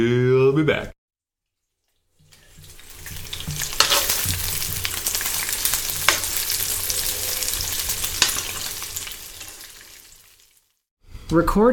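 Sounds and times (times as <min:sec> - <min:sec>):
speech: 0:00.0 - 0:01.0, 0:11.3 - 0:11.7
beef bacon sizzling in a skillet: 0:01.6 - 0:10.8.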